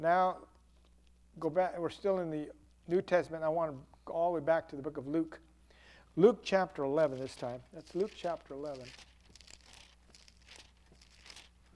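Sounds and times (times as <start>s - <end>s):
speech: 0.0s - 0.5s, 1.4s - 5.5s, 6.2s - 9.1s
low steady hum: 0.0s - 11.7s
thin Bible pages rustling and flipping as a church audience turns them: 6.8s - 11.7s.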